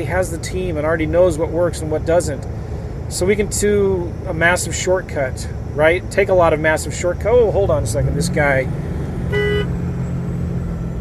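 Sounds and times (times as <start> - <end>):
speech: 0.0 - 9.4
low rumble of road traffic and engine noise: 0.0 - 11.0
car horn honking at a truck: 9.2 - 9.9.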